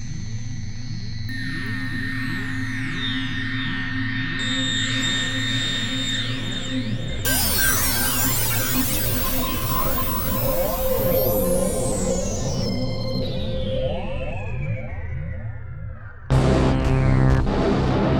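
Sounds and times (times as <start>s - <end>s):
noises: 1.3s - 18.1s.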